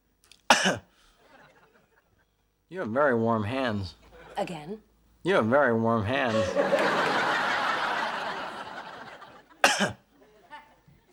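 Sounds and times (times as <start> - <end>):
sharp cough during a medical exam: 0.5 - 0.9, 9.6 - 10.1
speech: 0.6 - 0.9, 2.7 - 7.0
laughter: 6.3 - 9.6.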